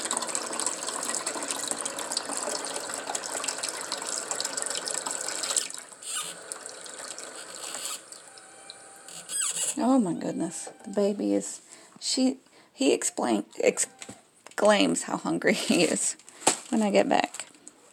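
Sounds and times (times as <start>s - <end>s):
tap water gushing into a water filter pitcher: 0.0s - 9.8s
speech: 9.9s - 14.0s, 14.6s - 17.4s.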